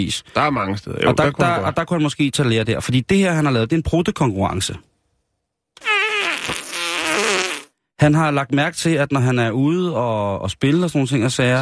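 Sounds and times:
speech: 0.0s - 4.9s, 8.0s - 11.5s
long loud buzzing fart: 5.8s - 7.8s.

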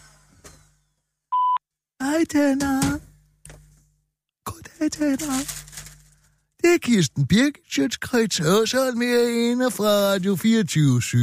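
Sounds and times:
electronic voicemail beep: 1.3s - 1.6s
speech: 2.2s - 3.0s, 4.8s - 5.6s, 6.7s - 11.2s.

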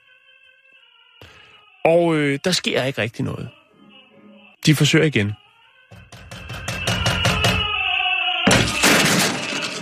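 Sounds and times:
speech: 1.8s - 3.6s, 4.7s - 5.4s
firm knocking on a door: 5.9s - 7.7s
loud harsh crashing burst: 8.4s - 9.7s.

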